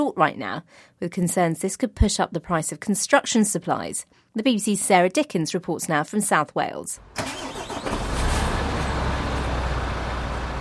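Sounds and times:
speech: 0.0s - 8.0s
engine of a huge articulated lorry rumbling as it parks in Llanelli: 7.0s - 10.5s.

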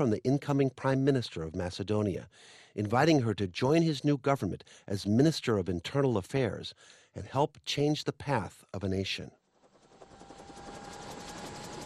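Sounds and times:
speech: 0.0s - 9.4s
government helicopter taking off from dead grass by a border: 9.5s - 11.8s.

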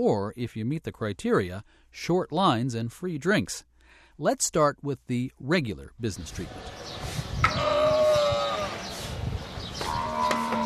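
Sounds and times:
speech: 0.0s - 7.7s
faint outdoor background: 0.0s - 10.6s
camel bellowing at a camel dairy in the desert outside Dubai: 7.4s - 9.0s, 9.8s - 10.6s.

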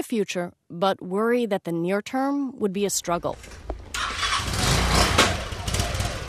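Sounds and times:
speech: 0.0s - 3.7s
motorcycle engine starting and idling: 3.6s - 6.2s.

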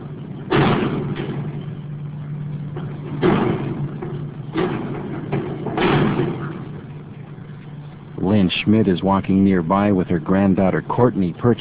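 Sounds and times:
wind-blown loose sheet of tin roofing slamming into wooden rafters in tornado-damaged town: 0.0s - 1.9s, 2.7s - 7.2s
steady low hum: 0.0s - 11.5s
speech: 8.7s - 11.5s.

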